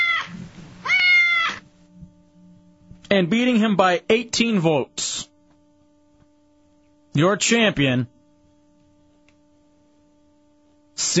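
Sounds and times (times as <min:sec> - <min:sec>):
cat meowing: 0:00.0 - 0:01.6
speech: 0:03.1 - 0:05.3, 0:07.2 - 0:08.1, 0:11.0 - 0:11.1.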